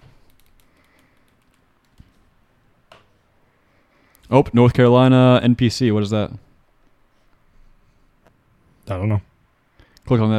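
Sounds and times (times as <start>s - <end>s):
typing on a small computer keyboard: 0.2s - 2.2s
speech: 4.3s - 6.5s, 8.9s - 9.3s, 10.1s - 10.3s.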